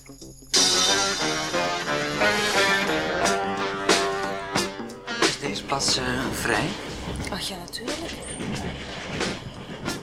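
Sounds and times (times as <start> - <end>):
speech: 0.1 - 0.6, 5.8 - 9.5
train running on rails: 0.6 - 10.0
train wheel clacks on rails: 5.4 - 10.0.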